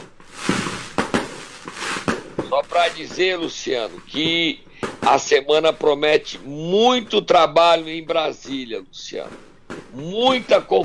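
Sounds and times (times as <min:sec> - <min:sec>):
firecrackers bursting: 0:00.0 - 0:10.8
speech: 0:02.6 - 0:10.8.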